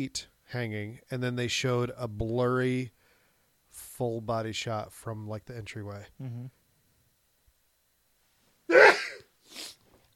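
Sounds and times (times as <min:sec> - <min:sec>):
speech: 0:00.0 - 0:03.0, 0:03.8 - 0:06.6
person sneezing uncovered from the mouth: 0:08.7 - 0:09.8.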